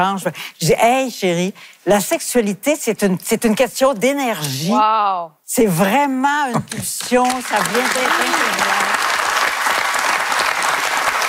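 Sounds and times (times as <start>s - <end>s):
speech: 0.0s - 8.9s
audience applause: 7.2s - 11.2s.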